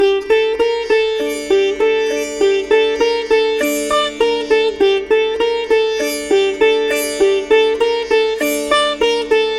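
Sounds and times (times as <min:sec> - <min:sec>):
Indian sitar playing in D minor: 0:00.0 - 0:09.5.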